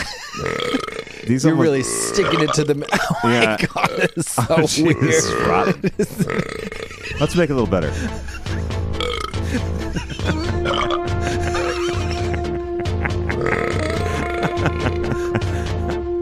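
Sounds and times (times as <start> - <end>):
laughter: 0.0 - 16.1
long loud belch: 0.4 - 6.9, 9.0 - 9.4, 10.7 - 11.0, 13.4 - 14.1
speech: 0.4 - 8.4, 9.5 - 10.8.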